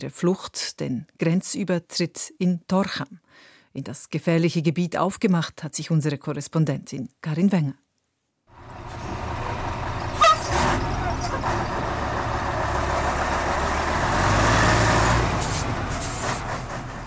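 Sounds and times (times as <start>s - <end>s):
speech: 0.0s - 7.8s
heavy trucks rumbling and idling at a border crossing: 8.5s - 17.0s
truck air brakes hissing: 8.7s - 11.8s, 15.4s - 16.7s
truck horn toot: 10.1s - 11.6s.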